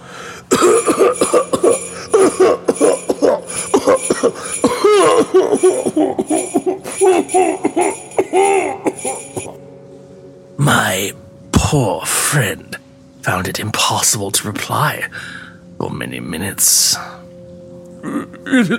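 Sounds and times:
violent coughing fit with harsh hacking coughs: 0.2 - 9.6
speech: 0.6 - 2.3, 11.0 - 17.2, 18.0 - 18.7.

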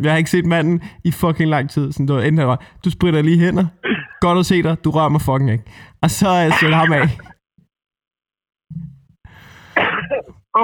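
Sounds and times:
speech: 0.0 - 7.3
person coughing harshly: 3.8 - 4.2, 6.5 - 7.3, 9.6 - 10.6
laughter: 6.2 - 7.3.

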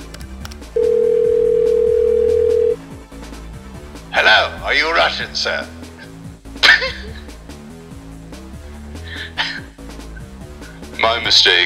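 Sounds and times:
soft music: 0.0 - 11.6
telephone dial tone: 0.8 - 2.8
speech: 4.7 - 5.8, 11.2 - 11.6.

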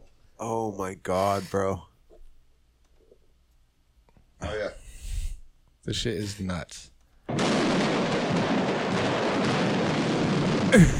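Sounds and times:
speech: 0.4 - 1.9, 5.8 - 7.4, 10.7 - 10.9
firework factory explosion with crackling blasts: 7.3 - 10.9.

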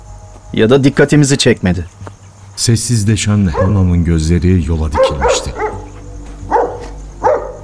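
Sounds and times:
low hum: 0.0 - 7.6
speech: 0.5 - 5.6
dog barking: 3.5 - 3.8, 4.9 - 7.6.

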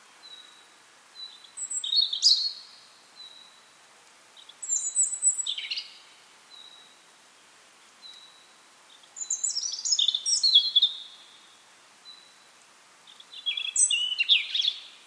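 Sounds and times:
faint hushed outdoor background: 0.0 - 15.0
bird singing bright high chirps and trills: 1.2 - 3.6, 4.4 - 7.0, 8.0 - 12.4, 13.1 - 15.0.

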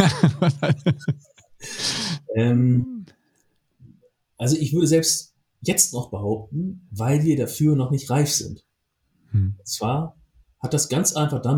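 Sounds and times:
laughter: 0.0 - 1.2
speech: 0.0 - 3.0, 4.4 - 8.7, 9.3 - 11.5
heavy breathing with voiced huffs: 1.6 - 2.3
drawn-out groaning sigh: 1.6 - 3.1, 9.3 - 9.6.

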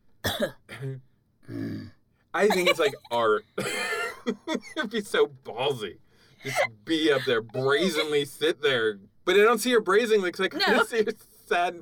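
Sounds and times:
person imitating an audience member coughing: 0.2 - 1.0, 2.5 - 4.8
speech: 0.4 - 11.8
laughter: 2.4 - 5.8, 6.4 - 8.4.

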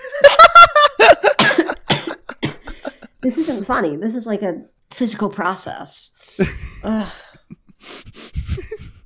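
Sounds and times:
laughter: 0.0 - 3.5, 6.4 - 9.0
person in a loud coughing fit: 1.2 - 3.6
speech: 3.5 - 7.3.

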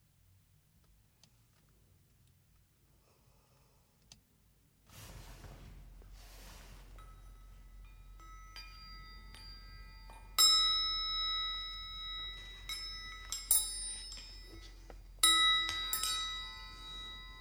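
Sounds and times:
soft rustles: 4.8 - 10.4, 11.5 - 17.3
chimes played by a child: 6.5 - 17.3.

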